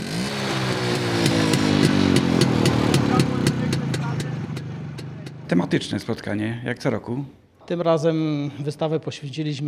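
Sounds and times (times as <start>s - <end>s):
vintage motorcycle engine running at exhibition in Siedliska near Rzeszów, Poland: 0.0s - 6.0s
speech: 5.7s - 9.6s.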